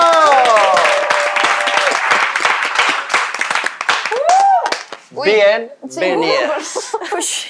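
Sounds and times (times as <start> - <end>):
loud sustained applause from a crowd: 0.0 - 5.1
speech: 5.2 - 7.4.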